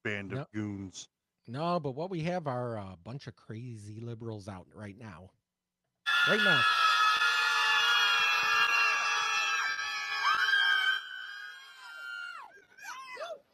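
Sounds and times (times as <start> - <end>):
speech: 0.0 - 5.4, 6.3 - 6.9
crowd of people in New York screaming in unison: 6.1 - 12.6.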